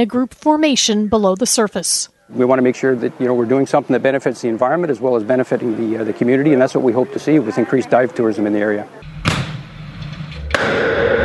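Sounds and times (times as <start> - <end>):
speech: 0.0 - 9.4
explosion scuttling a warship off the coast of Gambier Island: 9.1 - 11.2
sustained broad roar of warship explosion: 9.1 - 11.2.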